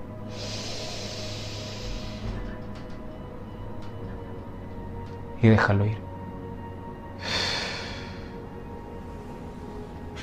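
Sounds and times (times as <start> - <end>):
low humming drone: 0.0 - 10.2
person taking a deep breath in and out: 0.2 - 2.4, 7.2 - 8.6
speech: 5.4 - 6.1.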